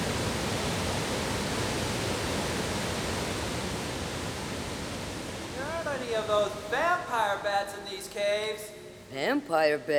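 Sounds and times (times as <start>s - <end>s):
roaring waterfall: 0.0s - 7.4s
speech: 6.0s - 9.9s.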